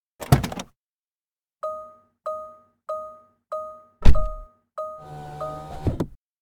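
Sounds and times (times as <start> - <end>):
car interior door: 0.2 - 0.7, 4.0 - 6.2
car interior beep signal: 1.6 - 5.9
car interior window: 5.0 - 6.2.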